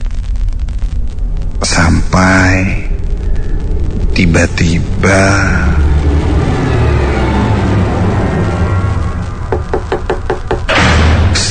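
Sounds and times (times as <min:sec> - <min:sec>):
loud rumbling noise: 0:00.8 - 0:11.4
speech: 0:04.2 - 0:05.6
knocking on a door: 0:09.5 - 0:10.8.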